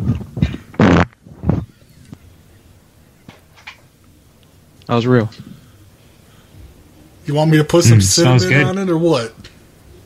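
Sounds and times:
loud fart made over the phone: 0.0s - 1.7s
faint scattered noises: 0.0s - 10.0s
speech: 4.9s - 5.5s, 7.3s - 9.5s.

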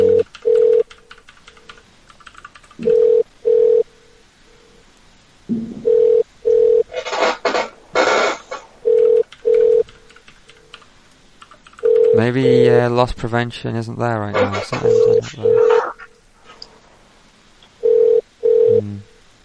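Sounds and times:
telephone ringing: 0.0s - 0.9s, 2.8s - 3.9s, 5.8s - 6.9s, 8.8s - 9.9s, 11.8s - 12.4s, 14.8s - 15.9s, 17.8s - 18.8s
loud harsh burst of noise: 6.9s - 8.8s
speech: 12.3s - 15.8s.

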